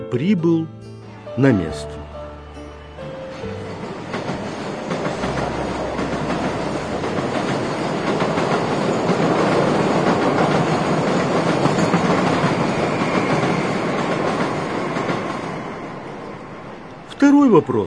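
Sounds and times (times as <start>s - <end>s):
speech: 0.1s - 2.0s, 17.3s - 17.8s
train passing with clickety-clack of wheels: 3.6s - 15.9s.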